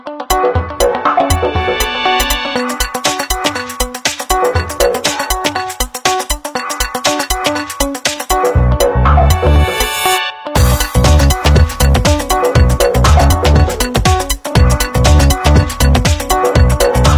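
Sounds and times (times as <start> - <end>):
original Nokia 5310 XpressMusic ringtone: 0.3 - 17.1.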